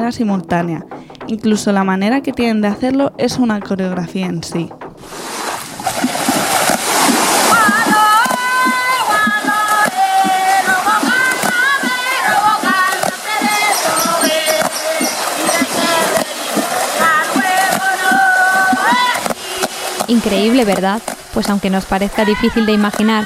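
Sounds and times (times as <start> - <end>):
speech: 0.0 - 5.2, 20.2 - 23.2
women's water drumming with hands striking water: 4.8 - 23.2
several women singing together: 7.3 - 21.0, 21.8 - 23.2.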